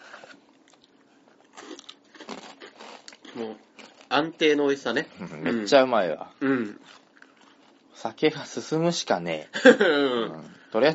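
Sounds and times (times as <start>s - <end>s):
biting and chewing an extra-rich crisp snack: 0.0s - 4.1s, 6.8s - 8.0s
speech: 4.2s - 7.0s, 8.0s - 10.9s.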